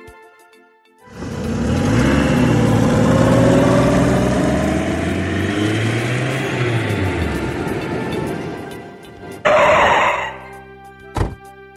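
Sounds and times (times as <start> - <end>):
car engine rumbling: 1.1 - 10.5
thump: 11.1 - 11.4.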